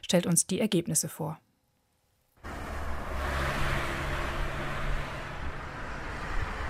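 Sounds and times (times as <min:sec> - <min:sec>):
speech: 0:00.0 - 0:01.5
car engines accelerating and revving: 0:02.4 - 0:06.6
loud road traffic: 0:02.4 - 0:06.6.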